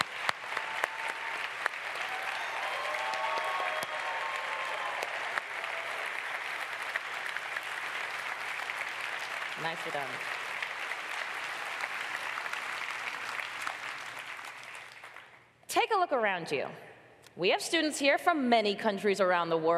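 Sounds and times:
large audience applause at an awards ceremony: 0:00.0 - 0:15.4
speech: 0:09.6 - 0:10.4, 0:16.0 - 0:19.7.

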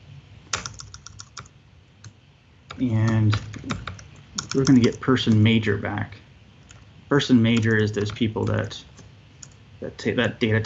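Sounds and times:
faint low hum: 0:00.0 - 0:10.6
typing on a computer keyboard while writing code: 0:00.5 - 0:05.5, 0:06.6 - 0:06.9, 0:07.5 - 0:09.6
speech: 0:02.8 - 0:03.9, 0:04.5 - 0:06.2, 0:07.1 - 0:08.9, 0:09.8 - 0:10.6.

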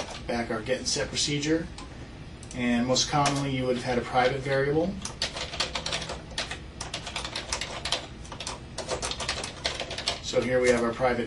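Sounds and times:
typing on a computer keyboard: 0:00.0 - 0:00.2, 0:03.2 - 0:03.5, 0:04.2 - 0:11.0
speech: 0:00.3 - 0:01.8, 0:02.5 - 0:05.2, 0:10.3 - 0:11.2.

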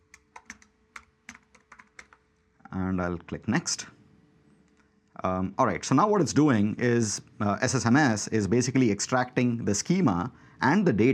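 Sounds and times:
typing a file name on a computer keyboard: 0:00.0 - 0:02.3
speech: 0:02.8 - 0:04.0, 0:05.2 - 0:11.1.

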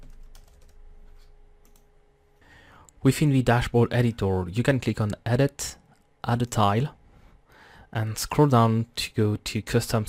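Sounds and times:
quick light keystrokes on a computer keyboard: 0:00.0 - 0:00.8
speech: 0:03.0 - 0:07.0, 0:07.9 - 0:10.0.

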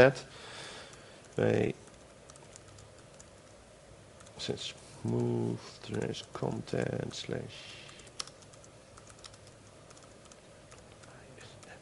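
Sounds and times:
speech: 0:00.0 - 0:00.4, 0:01.4 - 0:01.8, 0:04.4 - 0:07.8
computer keyboard typing a URL: 0:00.9 - 0:03.6, 0:05.0 - 0:07.0, 0:07.9 - 0:11.8.

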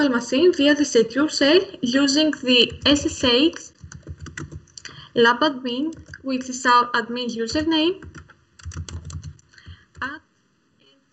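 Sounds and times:
speech: 0:00.0 - 0:03.7, 0:05.2 - 0:08.2
typing on a computer keyboard: 0:02.6 - 0:05.0, 0:05.9 - 0:06.3, 0:07.5 - 0:10.1
heavier press of the enter key on a computer keyboard: 0:02.7 - 0:04.8, 0:05.9 - 0:06.2, 0:07.5 - 0:10.1.

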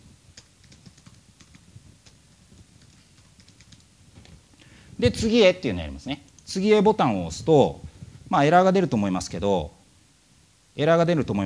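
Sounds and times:
computer keyboard typing an account name: 0:00.3 - 0:03.9
speech: 0:05.0 - 0:09.8, 0:10.8 - 0:11.4.

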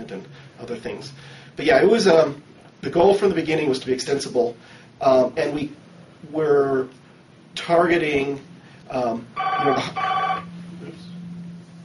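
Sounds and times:
speech: 0:00.1 - 0:07.0, 0:07.6 - 0:10.1
electronic telephone ringing: 0:09.4 - 0:10.5.

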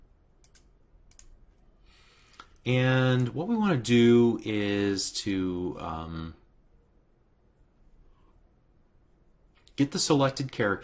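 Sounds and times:
faint steady hiss: 0:00.0 - 0:10.8
computer keyboard keys being pressed while writing code: 0:00.4 - 0:01.4
speech: 0:02.6 - 0:06.4, 0:09.8 - 0:10.8.

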